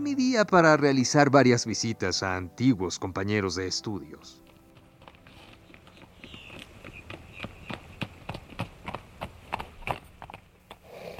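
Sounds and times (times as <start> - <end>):
speech: 0.0 - 4.5
saddled horse hooves clip-clopping at a walking pace: 3.8 - 11.1.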